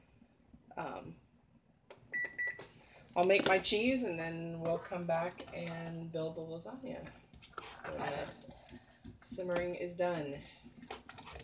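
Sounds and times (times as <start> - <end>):
speech: 0.8 - 1.2, 3.2 - 7.2, 7.8 - 8.6, 9.3 - 10.9
quiet kitchen noise: 2.0 - 11.4
kitchen timer beeping as its buttons are pressed: 2.1 - 2.6.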